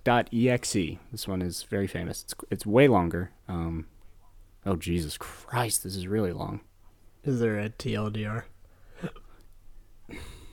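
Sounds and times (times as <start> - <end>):
speech: 0.0 - 3.9, 4.6 - 9.2
person hiccuping: 9.0 - 9.4.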